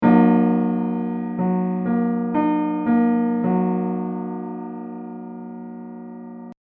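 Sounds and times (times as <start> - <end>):
giant chord: 0.0 - 6.6.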